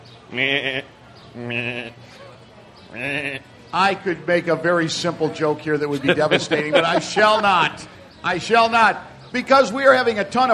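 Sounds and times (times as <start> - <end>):
goats bleating: 0.3 - 2.0, 2.9 - 3.5
speech: 0.3 - 2.3, 2.9 - 10.5
laughter: 5.4 - 8.0.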